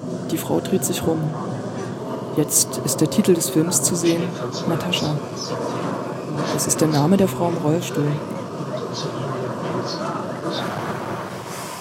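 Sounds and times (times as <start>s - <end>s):
subway train rumbling while pulling away: 0.0s - 11.7s
speech: 0.3s - 1.6s, 2.4s - 9.2s.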